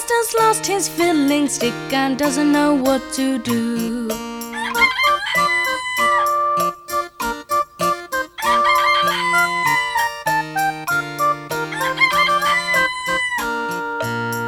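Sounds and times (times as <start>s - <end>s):
bright rhythmic musical backing of sustained tones and plucked notes: 0.0s - 14.4s
speech: 0.1s - 5.0s
rooster crowing: 4.6s - 6.4s, 8.4s - 10.0s, 11.7s - 13.5s.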